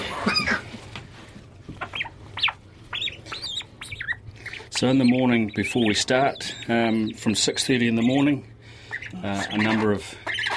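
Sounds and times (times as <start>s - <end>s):
bird squawking while being weighed at a feeding shed: 1.8s - 7.2s, 7.9s - 10.5s
speech: 4.8s - 8.5s, 9.1s - 10.3s.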